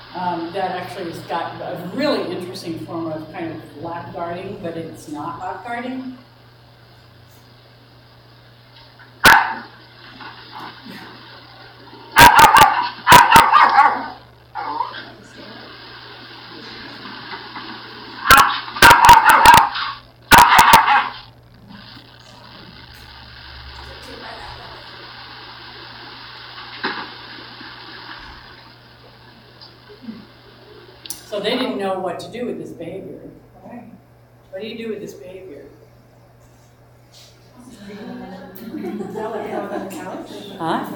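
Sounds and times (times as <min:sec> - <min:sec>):
low steady hum: 0:00.0 - 0:40.9
speech: 0:00.1 - 0:06.3, 0:31.8 - 0:33.5, 0:34.6 - 0:35.6
foster dog barking: 0:09.2 - 0:09.7, 0:12.2 - 0:15.1, 0:18.2 - 0:21.3
laughter: 0:37.6 - 0:40.9.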